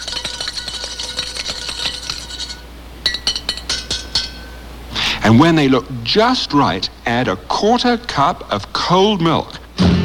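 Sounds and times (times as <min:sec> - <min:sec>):
utensil stirring eggs rapidly in a bowl: 0:00.0 - 0:04.6
speech: 0:05.2 - 0:09.6.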